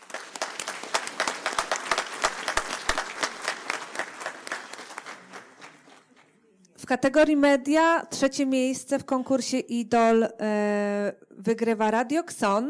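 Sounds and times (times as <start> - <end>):
audience at an award ceremony applauding: 0.0 - 6.4
speech: 6.8 - 12.6.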